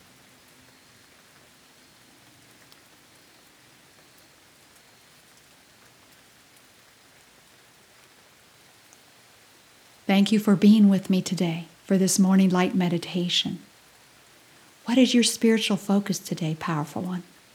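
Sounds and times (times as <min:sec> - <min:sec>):
steady rain hiss: 0:00.0 - 0:17.5
raindrops ticking: 0:09.9 - 0:17.5
speech: 0:10.1 - 0:13.7, 0:14.9 - 0:17.3.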